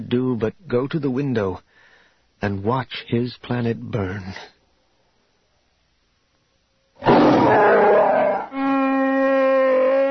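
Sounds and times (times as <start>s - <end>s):
speech: 0.0s - 1.7s, 2.4s - 4.6s
creature roaring in frustration: 7.0s - 10.0s.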